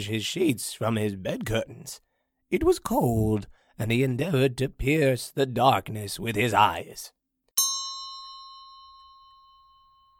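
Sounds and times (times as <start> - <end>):
speech: 0.0 - 7.2
deep clock bell tolling the hour: 7.6 - 10.1.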